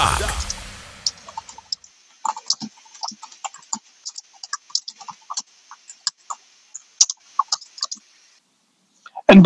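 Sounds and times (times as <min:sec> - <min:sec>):
typing on a computer keyboard: 0:01.4 - 0:08.0.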